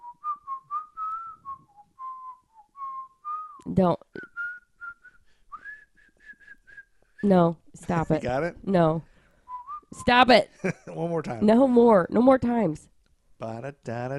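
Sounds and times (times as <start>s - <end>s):
person whistling a simple song melody: 0.0s - 7.2s, 9.5s - 9.9s
speech: 3.6s - 4.0s, 7.2s - 9.1s, 9.9s - 14.1s.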